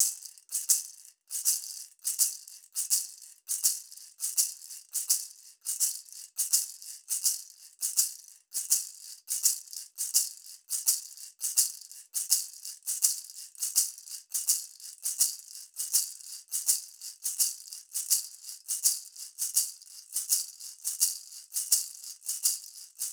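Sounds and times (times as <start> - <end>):
small shaker: 0.0 - 23.1.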